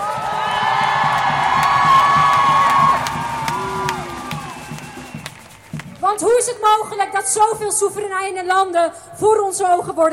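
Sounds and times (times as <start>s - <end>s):
whoops and yells: 0.0s - 5.1s
rally crowd shouting and cheering: 0.0s - 7.5s
speech: 6.4s - 10.1s.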